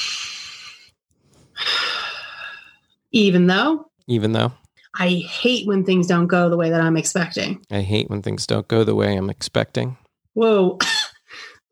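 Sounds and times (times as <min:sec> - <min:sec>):
deep breath in and out: 0:00.0 - 0:02.9
speech: 0:03.1 - 0:11.4.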